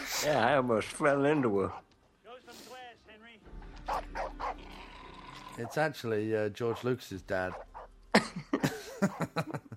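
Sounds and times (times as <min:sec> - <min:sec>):
speech: 0:00.2 - 0:01.9, 0:05.6 - 0:09.7
dog barking: 0:03.8 - 0:04.7, 0:07.5 - 0:07.9
laughter: 0:08.1 - 0:09.7.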